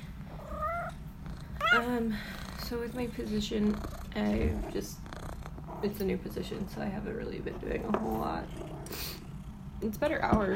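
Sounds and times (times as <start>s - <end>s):
female cat purring: 0.2s - 10.5s
female cat meowing: 0.4s - 1.0s, 1.6s - 1.9s
speech: 1.7s - 5.0s, 5.8s - 9.1s, 9.8s - 10.5s.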